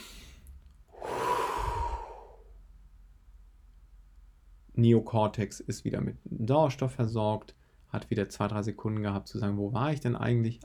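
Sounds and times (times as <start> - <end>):
slow deep breath in and out: 0.0 - 2.6
speech: 4.8 - 10.6.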